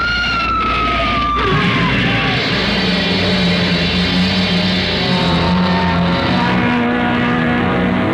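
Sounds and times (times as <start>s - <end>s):
engine and road noise: 0.0s - 8.1s
car skidding with tire screech: 0.8s - 8.1s
car crashing into a hearse: 1.4s - 6.8s.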